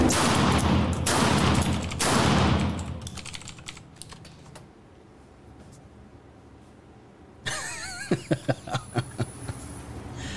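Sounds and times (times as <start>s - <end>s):
12 gauge shotgun firing ordinary birdshot: 0.1s - 3.0s
laughter: 7.5s - 9.7s.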